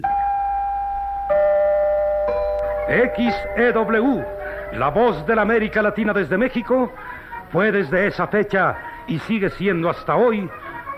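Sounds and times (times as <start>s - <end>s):
radio station identification bell chimes: 0.0s - 7.0s
speech: 2.9s - 10.7s.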